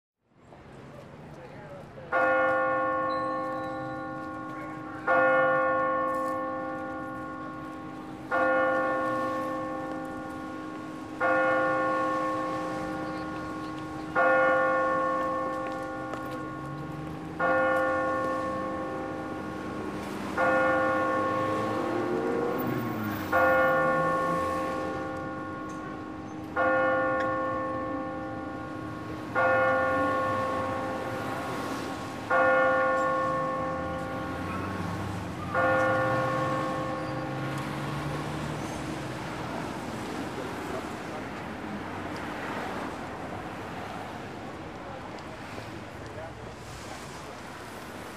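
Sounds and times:
city traffic: 0:00.2 - 0:48.1
pedestrians: 0:00.3 - 0:48.1
clock tower bell tolling: 0:02.1 - 0:39.1.

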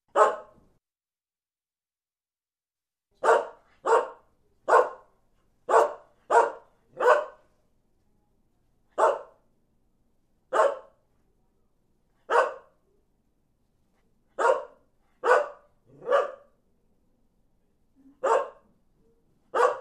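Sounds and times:
terrier barking in a kennel: 0:00.1 - 0:00.6, 0:03.2 - 0:05.1, 0:05.7 - 0:07.5, 0:09.0 - 0:09.4, 0:10.5 - 0:11.0, 0:12.3 - 0:12.8, 0:14.4 - 0:16.5, 0:18.2 - 0:18.7, 0:19.5 - 0:19.7.

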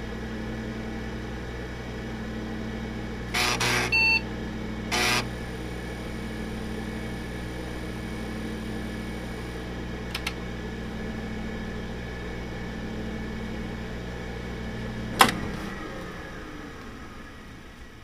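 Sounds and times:
old computer turning off: 0:00.2 - 0:17.9
old computer turning on: 0:02.7 - 0:17.8.

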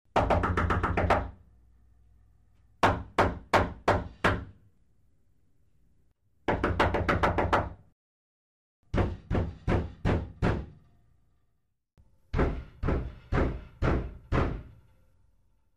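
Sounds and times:
knocking on a door: 0:00.2 - 0:01.3, 0:02.8 - 0:04.5, 0:06.5 - 0:07.8, 0:08.9 - 0:10.7, 0:12.3 - 0:14.7.

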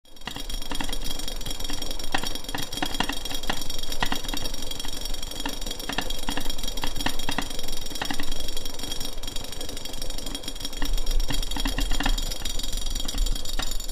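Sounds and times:
water boiling in a pot: 0:00.1 - 0:13.8
pot lid rumbling: 0:10.8 - 0:13.8.

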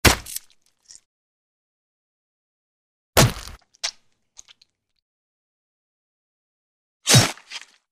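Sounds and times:
sword hitting a body: 0:00.0 - 0:00.5, 0:03.2 - 0:03.6, 0:07.0 - 0:07.7.

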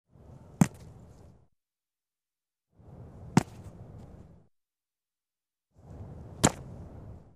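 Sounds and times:
football goalkeeper catching the ball: 0:00.6 - 0:00.9, 0:03.3 - 0:03.7, 0:06.4 - 0:06.7.

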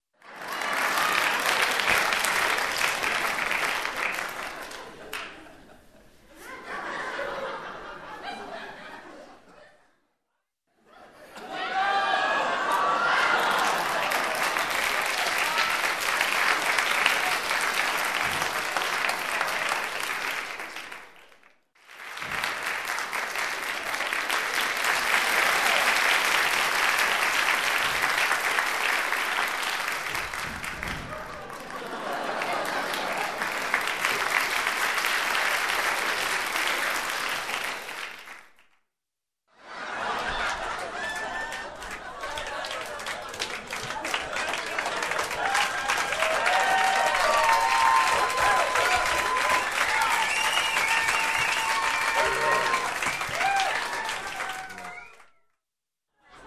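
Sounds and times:
applause in the room: 0:00.0 - 0:05.5, 0:11.8 - 0:38.9, 0:39.8 - 0:55.6
laughter in the room: 0:04.4 - 0:10.1, 0:10.8 - 0:15.4, 0:31.1 - 0:33.8, 0:39.6 - 0:45.9, 0:56.2 - 0:56.4.

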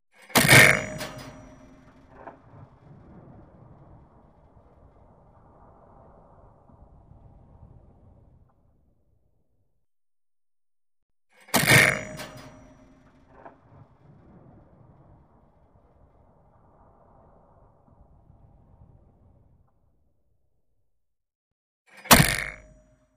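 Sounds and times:
tank machine gun shots: 0:00.2 - 0:02.2, 0:11.4 - 0:13.3, 0:22.0 - 0:22.8.

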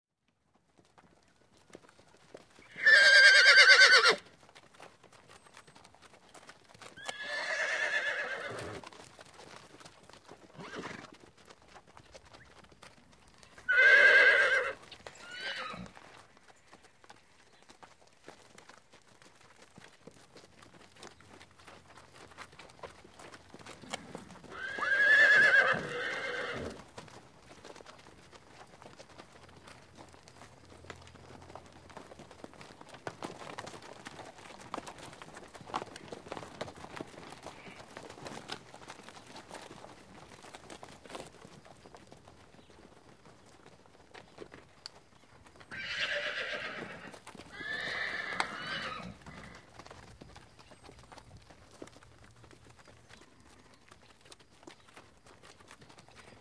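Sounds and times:
horses walking: 0:00.2 - 0:56.3
horses neighing restlessly: 0:02.6 - 0:04.2, 0:07.0 - 0:09.0, 0:10.5 - 0:11.2, 0:13.6 - 0:16.0, 0:23.7 - 0:26.9, 0:37.4 - 0:38.1, 0:45.6 - 0:49.7
horses snorting: 0:07.0 - 0:09.0, 0:10.5 - 0:11.2, 0:13.7 - 0:16.0, 0:23.6 - 0:26.9, 0:45.7 - 0:49.7.

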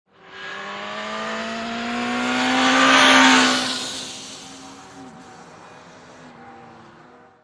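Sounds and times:
racing motorcycle passing by: 0:00.1 - 0:05.9.

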